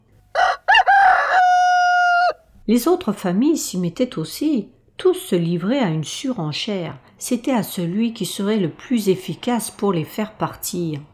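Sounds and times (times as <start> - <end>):
rooster crowing: 0.3 - 2.4
speech: 2.7 - 11.1.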